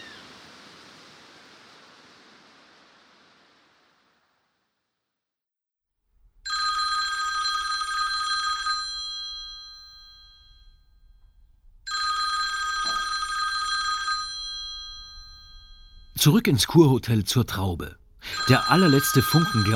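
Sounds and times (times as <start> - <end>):
mobile phone ringing in a spa hotel: 6.5 - 10.8, 11.9 - 16.2, 18.2 - 19.7
speech: 16.2 - 19.7.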